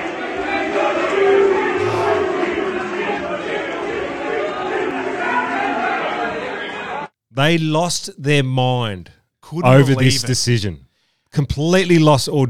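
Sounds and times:
cricket stadium crowd roaring and shouting as players leave: 0.0 - 7.1
speech: 7.4 - 12.4
individual yells and jeers from stadium crowd: 9.6 - 10.6.

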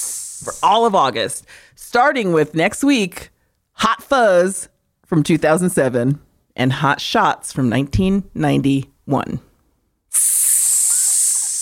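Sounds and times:
sizzling hiss sound effect: 0.0 - 0.9, 10.1 - 11.6
speech: 0.4 - 9.5, 10.1 - 10.4.

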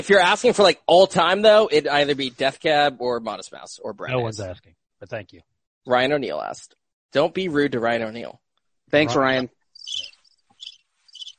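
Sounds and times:
speech: 0.0 - 10.1
cricket chirping sound effect: 9.7 - 11.3.

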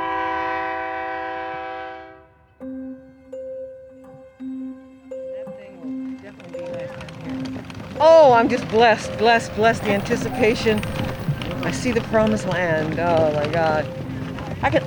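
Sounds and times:
Amtrak train horn blast at a small town station: 0.0 - 2.6
platform bustle: 4.3 - 14.8
speech: 8.0 - 14.0, 14.6 - 14.8.

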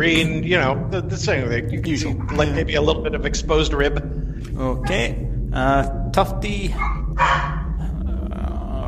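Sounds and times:
speech: 0.0 - 7.5
dog growling low and continuously: 4.6 - 5.3, 6.7 - 8.8
dog barking: 6.7 - 7.7.

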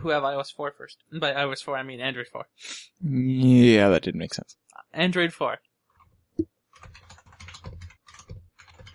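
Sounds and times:
speech: 0.0 - 5.7
typing on a computer keyboard: 6.8 - 8.9.

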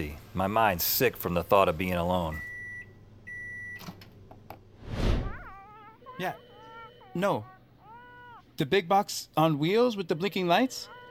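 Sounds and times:
speech: 0.0 - 2.5, 6.2 - 6.4, 7.2 - 7.5, 8.6 - 11.0
microwave beeping while reheating a snack: 2.1 - 4.2, 6.0 - 7.4.

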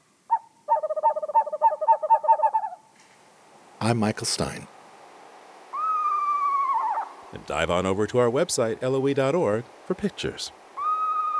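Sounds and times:
screech owl quavering trill: 0.3 - 2.8, 5.7 - 7.3, 10.8 - 11.3
speech: 3.8 - 4.8, 7.4 - 10.6.

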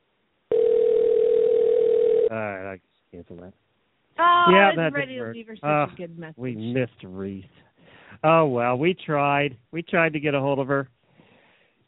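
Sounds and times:
telephone ring tone on an outgoing call: 0.5 - 2.3
speech: 2.3 - 7.6, 8.2 - 11.0.

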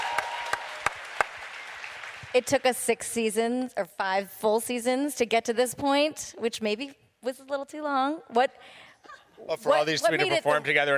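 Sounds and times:
audience applause: 0.0 - 2.4
sharper louder claps: 0.0 - 2.7
speech: 2.3 - 10.9.

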